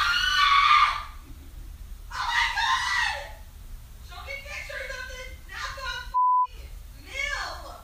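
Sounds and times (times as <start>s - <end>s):
woman's shrill blood-curdling screams of joy: 0.0s - 1.2s, 2.1s - 3.4s.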